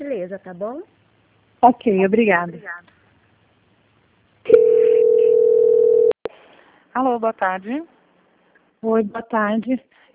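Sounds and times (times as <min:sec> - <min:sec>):
speech: 0:00.3 - 0:01.0, 0:01.6 - 0:02.9, 0:07.0 - 0:07.9, 0:08.8 - 0:10.0
telephone line tone while a call is transferred to a bank's quality control department: 0:04.5 - 0:06.2.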